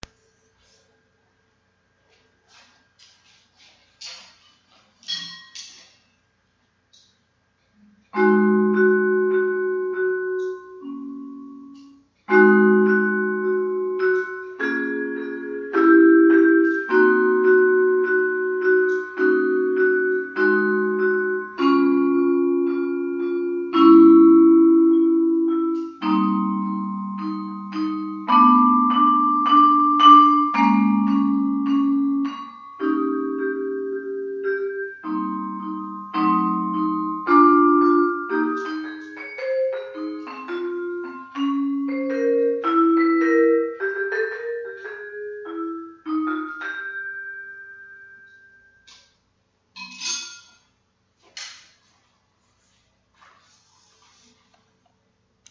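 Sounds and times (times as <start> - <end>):
vibraphone chords: 8.0 - 49.0.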